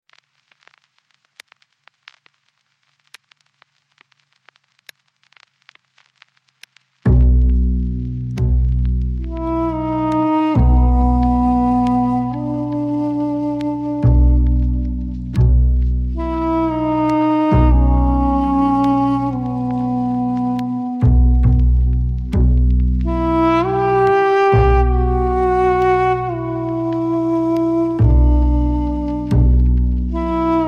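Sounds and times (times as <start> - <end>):
duduk playing: 7.1 - 30.6.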